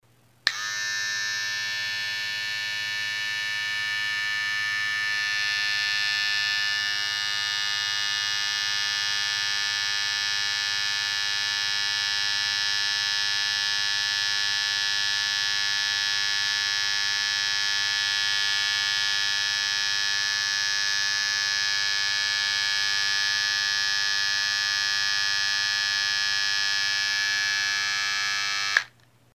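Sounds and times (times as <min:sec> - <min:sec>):
hair clipper buzzing: 0:00.4 - 0:29.0.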